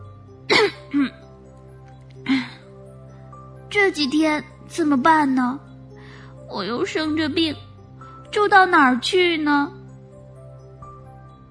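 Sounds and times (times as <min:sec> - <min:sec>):
voice imitating a sick hedgehog coughing: 0:00.5 - 0:01.2
speech: 0:00.6 - 0:01.2, 0:03.8 - 0:05.7, 0:06.5 - 0:07.6, 0:08.3 - 0:09.8.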